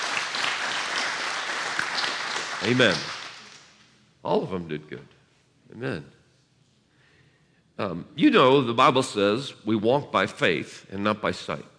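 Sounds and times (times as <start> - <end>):
church congregation clapping: 0.0 - 4.0
speech: 2.6 - 3.2, 4.3 - 6.2, 7.8 - 11.7.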